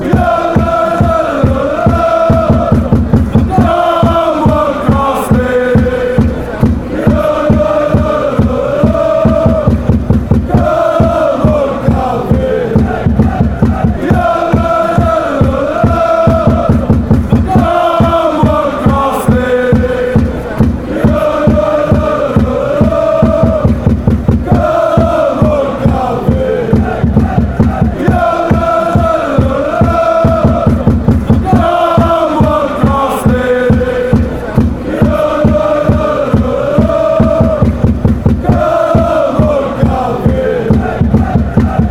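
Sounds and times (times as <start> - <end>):
chant in Mechelen: 0.0 - 41.8.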